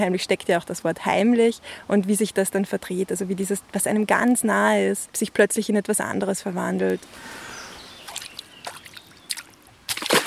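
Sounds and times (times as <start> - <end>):
speech: 0.0 - 7.5
water lapping and sloshing at a small lake's edge: 7.9 - 10.2.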